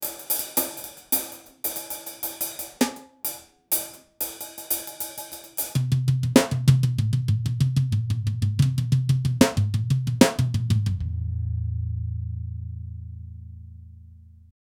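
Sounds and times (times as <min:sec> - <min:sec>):
jazz funk drum solo: 0:00.0 - 0:11.4.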